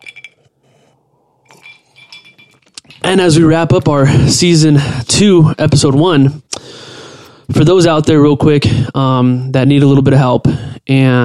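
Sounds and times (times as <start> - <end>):
glasses clinking together in a toast: 0.0 - 0.5, 1.4 - 3.4
speech: 3.1 - 6.7, 7.5 - 11.2.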